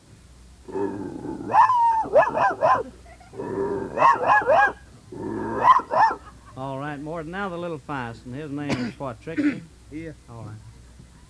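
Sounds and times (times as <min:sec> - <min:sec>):
shepherd dog howling and barking: 0:00.7 - 0:06.4
speech: 0:06.6 - 0:10.7.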